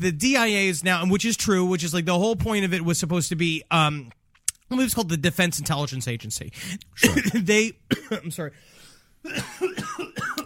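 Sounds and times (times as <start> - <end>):
speech: 0.0 - 10.3
person coughing: 7.0 - 8.4, 9.2 - 10.4.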